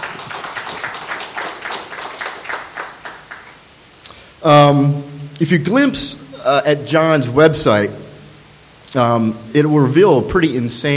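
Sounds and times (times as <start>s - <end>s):
small audience applauding: 0.0s - 3.6s
speech: 4.4s - 8.0s, 8.9s - 10.9s.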